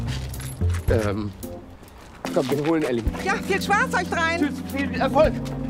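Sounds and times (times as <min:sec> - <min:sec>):
keys jangling as they are handed over: 0:00.1 - 0:00.9
speech: 0:00.9 - 0:01.4, 0:02.3 - 0:05.6.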